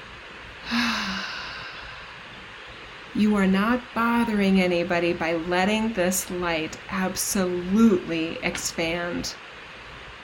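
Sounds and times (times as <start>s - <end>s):
low steady hiss: 0.0s - 10.2s
deep breath during a guided meditation: 0.6s - 2.4s
speech: 3.1s - 9.5s.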